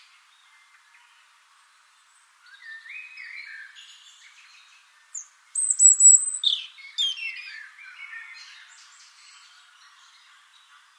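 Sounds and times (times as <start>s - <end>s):
European robin Erithacus rubecula singing: 2.4s - 8.6s.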